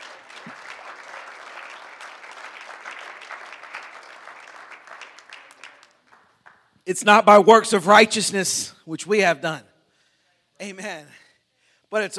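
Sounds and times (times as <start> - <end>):
audience clapping hands: 0.0 - 6.8
speech: 6.9 - 9.7, 10.6 - 11.2, 11.9 - 12.1.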